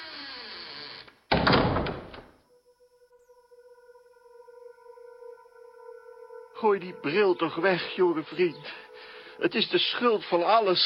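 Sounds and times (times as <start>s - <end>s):
house door shutting with a loud heavy thud: 1.3s - 2.3s
steady faint electronic hum: 2.4s - 10.8s
speech: 6.6s - 8.8s, 9.4s - 10.8s.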